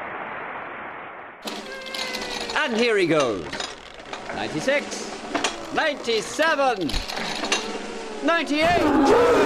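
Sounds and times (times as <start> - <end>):
cat meowing: 1.5 - 2.6
speech: 2.7 - 3.7, 4.3 - 5.1, 5.7 - 7.4, 8.2 - 9.4.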